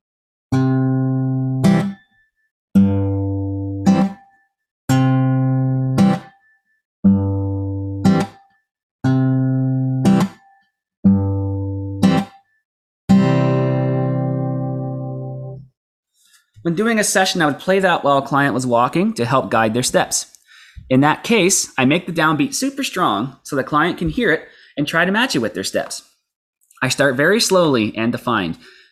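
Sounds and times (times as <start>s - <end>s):
guitar strummed in two-beat boom-chuck rhythm: 0.6s - 2.0s, 2.8s - 12.4s, 13.1s - 15.7s
speech: 16.6s - 26.1s, 26.8s - 28.8s.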